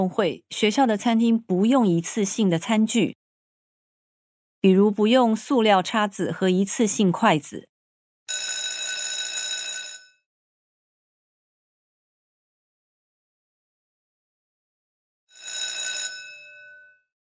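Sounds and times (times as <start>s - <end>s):
speech: 0.0s - 3.2s, 4.6s - 7.7s
school bell ringing on a school sports day: 8.3s - 10.0s, 15.3s - 16.9s.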